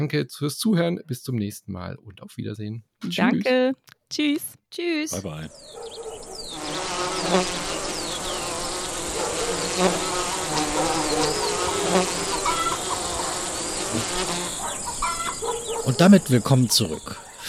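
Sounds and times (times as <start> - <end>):
speech: 0.0 - 7.7, 9.5 - 10.2, 11.9 - 12.3, 15.7 - 17.4
many bees buzzing: 5.2 - 17.4.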